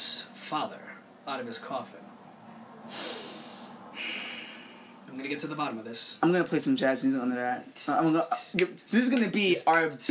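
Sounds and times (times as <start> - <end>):
speech: 0.5 - 2.2, 5.1 - 10.0
loud nasal sniff: 2.8 - 5.0.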